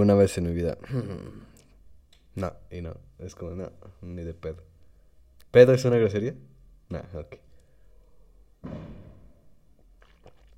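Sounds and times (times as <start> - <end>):
speech: 0.0 - 1.5, 2.4 - 4.7, 5.5 - 7.5, 8.6 - 9.1
firecracker bang outside at a distance: 8.6 - 9.5.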